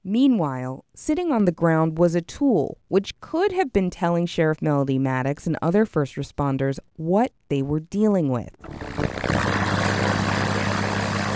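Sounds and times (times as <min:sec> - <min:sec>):
speech: 0:00.1 - 0:09.4
single-engine Cessna propeller plane flying overhead: 0:08.6 - 0:11.3.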